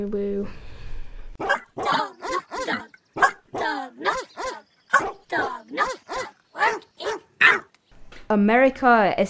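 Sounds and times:
speech: 0:00.0 - 0:00.6, 0:08.3 - 0:09.2
dog barking: 0:01.4 - 0:07.7.

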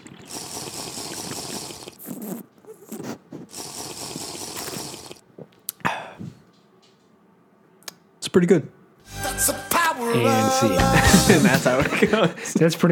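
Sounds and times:
sipping and slurping IPA beer: 0:00.0 - 0:05.2
swallowing: 0:00.0 - 0:06.4
speech: 0:08.4 - 0:08.8, 0:10.0 - 0:12.9
laughter: 0:10.7 - 0:12.8.

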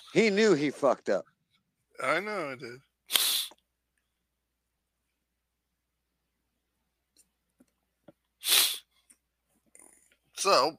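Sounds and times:
speech: 0:00.1 - 0:01.3, 0:02.0 - 0:03.2, 0:10.4 - 0:10.7
faint sniffs and breathy noises: 0:03.1 - 0:03.6, 0:08.4 - 0:09.1
person with troubled sinuses trying to sneeze: 0:03.1 - 0:03.6, 0:08.4 - 0:08.9.

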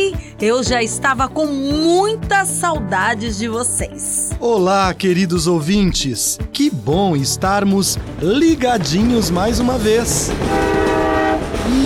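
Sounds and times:
speech: 0:00.4 - 0:10.9
low rumble of passing train cars: 0:07.0 - 0:11.8
passing train horn: 0:10.2 - 0:11.8.

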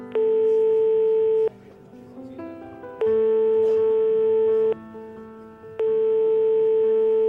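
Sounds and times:
phone call ringing unanswered with electronic ringing tones: 0:00.0 - 0:01.6, 0:03.0 - 0:04.9, 0:05.7 - 0:07.2
faint sound: 0:00.0 - 0:05.9.

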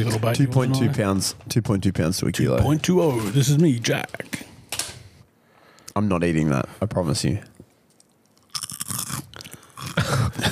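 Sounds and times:
speech: 0:00.0 - 0:04.4, 0:06.0 - 0:07.5
crunchy gnawing on something hard: 0:08.3 - 0:10.5.

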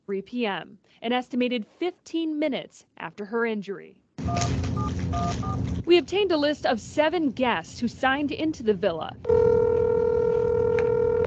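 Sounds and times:
speech: 0:00.1 - 0:09.6
electronic telephone keypad tone: 0:04.2 - 0:05.6, 0:09.3 - 0:11.2.

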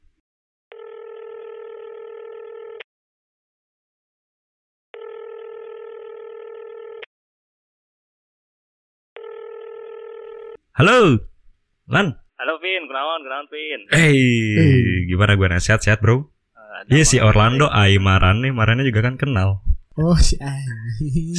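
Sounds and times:
phone ringback tone: 0:00.7 - 0:02.8, 0:05.0 - 0:07.0, 0:09.2 - 0:10.6
speech: 0:10.8 - 0:11.3, 0:11.9 - 0:21.3.

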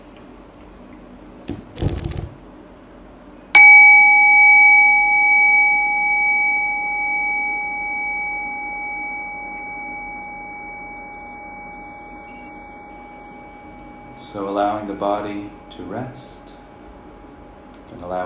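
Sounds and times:
meditation bell ringing with a clear sustained tone: 0:03.6 - 0:16.5.

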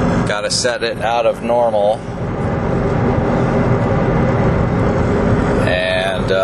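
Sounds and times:
McLaren sports car engine droning in sport mode inside the cabin: 0:00.0 - 0:06.4
road noise during a quick speed run: 0:00.0 - 0:06.4
speech: 0:00.3 - 0:02.3, 0:06.3 - 0:06.4.

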